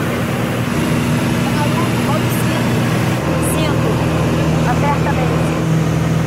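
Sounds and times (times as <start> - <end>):
propeller aircraft engine drone on board a small plane approaching to land: 0.0 - 6.2.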